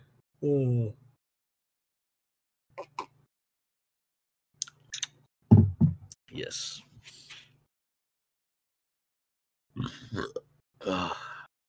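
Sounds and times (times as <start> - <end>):
speech: 0.4 - 1.0, 6.4 - 6.9, 9.8 - 11.3
loud burp: 9.8 - 11.2.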